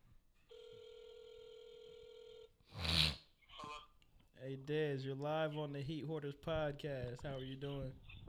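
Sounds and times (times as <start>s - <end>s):
phone ringback tone through a handset held up to the mic: 0.5s - 2.5s
speech: 4.5s - 8.1s.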